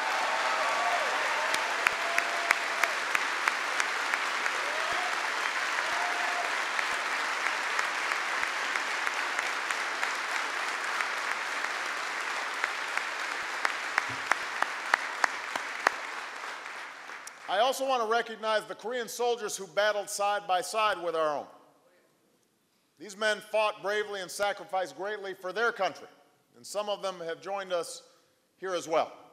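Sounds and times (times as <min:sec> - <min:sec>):
large standing audience applauding: 0:00.0 - 0:17.5
speech: 0:17.5 - 0:21.6, 0:23.0 - 0:29.2.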